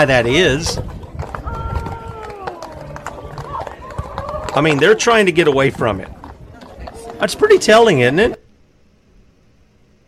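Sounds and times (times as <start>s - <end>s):
speech: 0.0s - 1.0s, 4.5s - 6.2s, 7.2s - 8.4s
horses' hooves clip-clopping on a hard street: 0.0s - 8.4s
murmur of voices: 1.4s - 8.4s.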